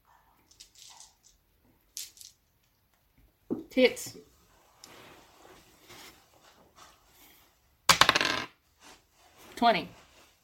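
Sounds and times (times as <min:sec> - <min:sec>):
polyhedral dice clattering across a tabletop: 0:00.6 - 0:02.5, 0:07.9 - 0:08.6
speech: 0:03.8 - 0:04.3, 0:09.6 - 0:10.0.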